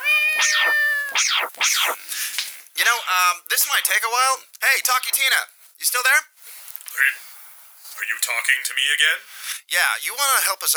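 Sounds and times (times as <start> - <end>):
cat meowing while being thrown: 0.0 - 2.0
speech: 0.4 - 6.3, 7.0 - 7.3, 8.0 - 10.7.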